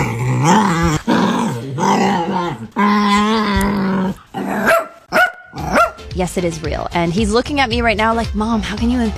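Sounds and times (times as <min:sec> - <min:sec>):
dog making unusual excited warbling growls: 0:00.0 - 0:06.0
speech: 0:00.4 - 0:01.0, 0:06.2 - 0:09.1.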